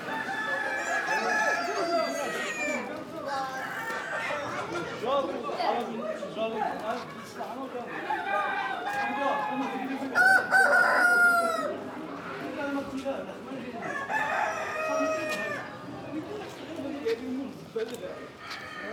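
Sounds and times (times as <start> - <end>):
hens clucking and cackling outdoors in Morocco: 0.0 - 5.6, 7.0 - 12.6, 13.7 - 16.6
voices outdoors in Morocco: 0.0 - 18.9.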